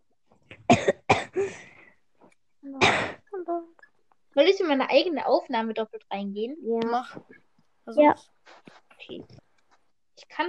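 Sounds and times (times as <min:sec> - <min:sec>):
harsh coughs: 0:00.5 - 0:01.7, 0:02.8 - 0:03.3
speech: 0:04.4 - 0:09.4, 0:10.2 - 0:10.4.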